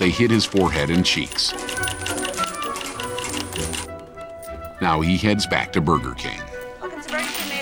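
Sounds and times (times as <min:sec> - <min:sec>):
speech: 0:00.1 - 0:01.8, 0:04.8 - 0:06.5
quarters shooting out of a shopping cart coin machine: 0:00.6 - 0:03.9, 0:06.9 - 0:07.6.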